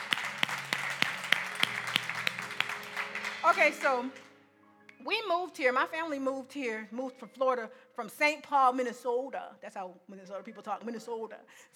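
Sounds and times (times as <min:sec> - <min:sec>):
audience applauding: 0:00.0 - 0:04.3
speech: 0:03.4 - 0:04.2, 0:05.0 - 0:11.7.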